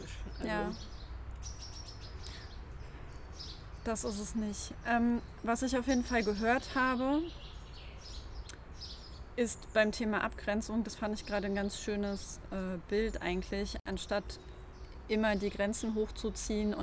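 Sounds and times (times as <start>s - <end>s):
faint birdsong chirps in a garden on a summer day: 0.0s - 16.8s
speech: 0.4s - 0.9s, 3.9s - 7.5s, 9.4s - 14.5s, 15.1s - 16.8s.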